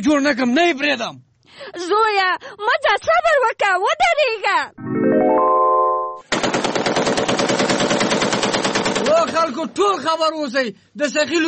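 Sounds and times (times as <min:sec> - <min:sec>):
speech: 0:00.0 - 0:05.5, 0:09.3 - 0:11.4
gun firing a burst of rapid automatic fire: 0:06.3 - 0:09.5.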